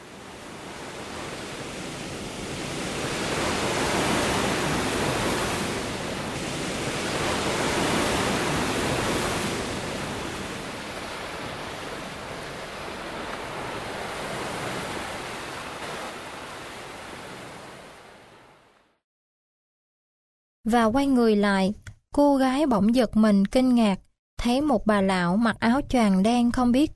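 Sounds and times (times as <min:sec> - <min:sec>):
ocean waves washing onto a sandy shore at night: 0:00.0 - 0:18.9
speech: 0:20.7 - 0:26.9.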